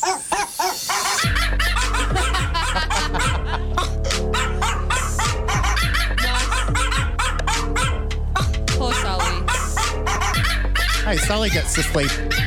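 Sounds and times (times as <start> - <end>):
laughter: 0.0 - 12.4
loud full musical backing with heavy bass: 1.2 - 12.4
dog barking in tune: 4.4 - 11.2
speech: 11.3 - 12.4.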